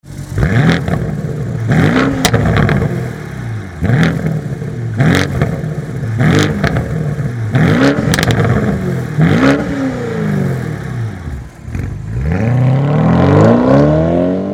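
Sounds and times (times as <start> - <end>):
BMW M550i G30 4.4l 340kW cat-back exhaust in Sport Mode: 0.0 - 14.5.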